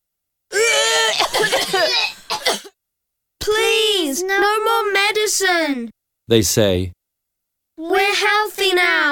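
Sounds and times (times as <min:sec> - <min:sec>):
children crying with high-pitched wail: 0:00.5 - 0:02.3
children coughing after taking medicine: 0:00.5 - 0:02.8
speech: 0:01.3 - 0:02.2, 0:04.1 - 0:07.0, 0:07.8 - 0:09.1.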